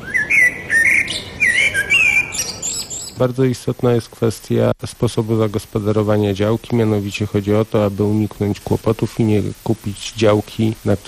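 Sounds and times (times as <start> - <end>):
birds singing around a quiet green garden plot: 0.0 - 3.2
speech: 3.2 - 11.0.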